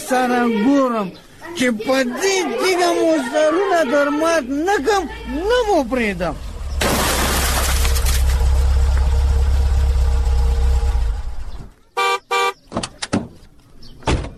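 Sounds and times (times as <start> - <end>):
speech: 0.1 - 6.5
car engine rumbling: 4.3 - 14.3
car horn toots: 12.0 - 12.6.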